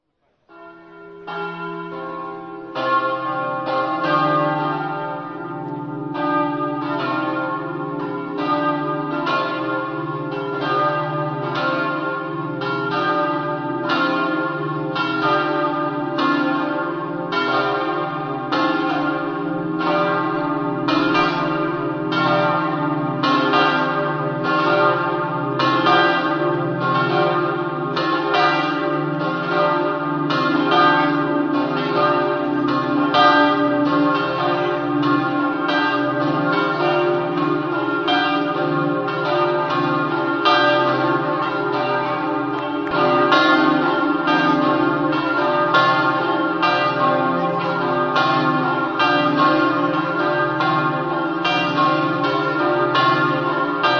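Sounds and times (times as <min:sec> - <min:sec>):
church bells: 0:00.5 - 0:53.9.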